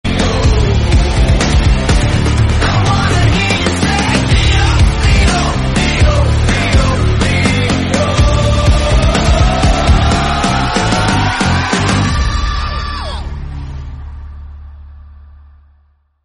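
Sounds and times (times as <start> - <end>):
background music: 0.0 - 15.8.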